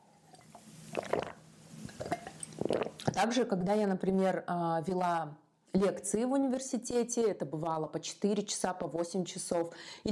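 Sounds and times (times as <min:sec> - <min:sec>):
sipping and swallowing water: 0:00.2 - 0:03.2
speech: 0:03.2 - 0:10.1.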